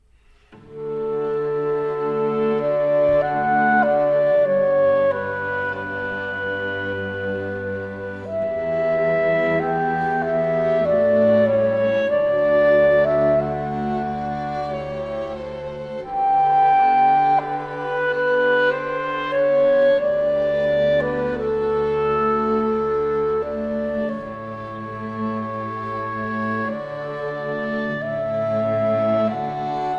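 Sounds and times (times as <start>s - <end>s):
quintet of clarinet and strings playing: 0.0s - 29.9s.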